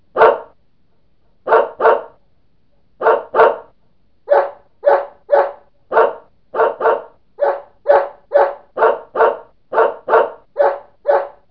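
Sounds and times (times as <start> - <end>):
animal barking: 0.1 - 0.6, 1.5 - 2.2, 3.0 - 3.7, 4.3 - 11.5.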